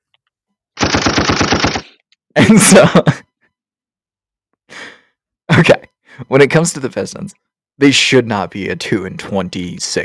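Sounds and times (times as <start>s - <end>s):
machine gun sound effect firing a rapid burst: 0.8s - 2.0s
speech: 1.9s - 3.3s, 5.6s - 10.0s.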